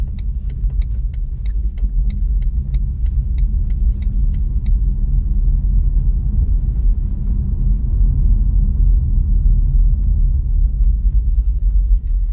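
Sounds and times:
faint regular ticking: 0.0 - 5.6
tires rolling on the road heard from inside an electric car: 0.0 - 12.3.

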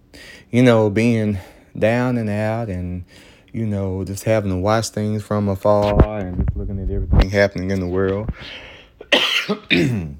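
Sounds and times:
speech: 0.5 - 10.1
harsh raspy coughing: 9.0 - 10.1.

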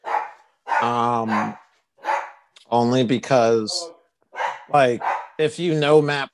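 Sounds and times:
dog barking: 0.0 - 2.5, 4.3 - 5.4
speech: 0.8 - 1.6, 2.7 - 4.0, 4.7 - 6.3.

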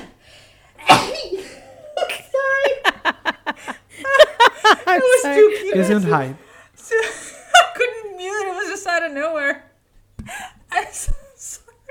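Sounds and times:
loud sneeze: 0.8 - 1.7
laughter: 1.4 - 8.5
speech: 5.2 - 6.4.

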